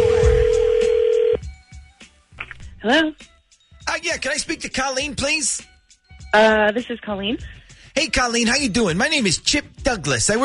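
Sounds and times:
steady telephone tone: 0.0s - 1.4s
speech: 2.8s - 3.3s, 3.9s - 5.7s, 6.3s - 10.4s.

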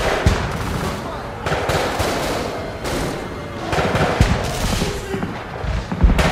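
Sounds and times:
rapid bursts of gunfire echoing through a house: 0.0s - 6.3s.

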